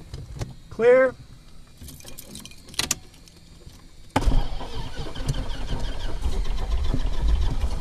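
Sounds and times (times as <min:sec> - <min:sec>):
speech: 0:00.8 - 0:01.2
propeller airplane engine starting: 0:04.1 - 0:07.7.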